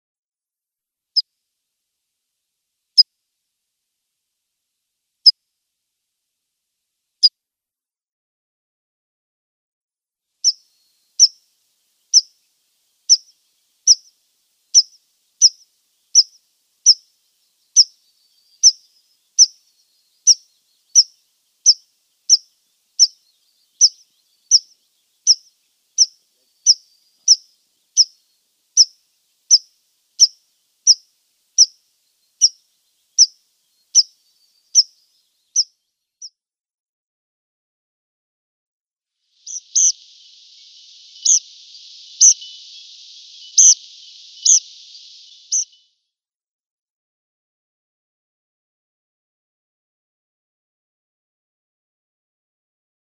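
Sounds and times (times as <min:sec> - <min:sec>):
Tree Pipit calls: 0:10.4 - 0:10.6, 0:11.2 - 0:11.4, 0:12.1 - 0:12.3, 0:13.1 - 0:14.1, 0:14.7 - 0:17.0, 0:17.7 - 0:36.3, 0:39.4 - 0:45.9.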